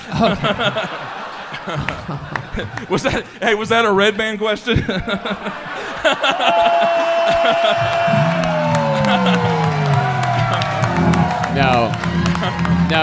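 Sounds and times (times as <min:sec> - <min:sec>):
scattered laughter: 0:00.0 - 0:02.9, 0:04.7 - 0:09.8
speech: 0:00.1 - 0:08.5, 0:11.6 - 0:13.0
audience cheering with whoops and shouts: 0:06.2 - 0:13.0
dense audience applause: 0:06.3 - 0:13.0.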